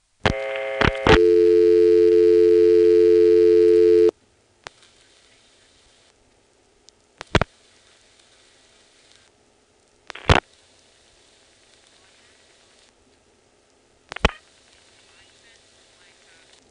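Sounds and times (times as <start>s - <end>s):
loud steady buzzing telephone busy tone: 0.3s - 4.1s
scattered clicks: 9.8s - 10.4s, 14.1s - 14.4s.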